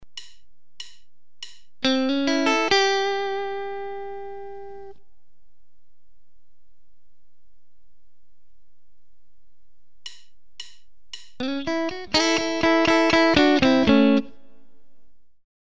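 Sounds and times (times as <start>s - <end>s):
blues guitar licks with major 3rd: 1.8s - 5.0s, 11.4s - 14.6s.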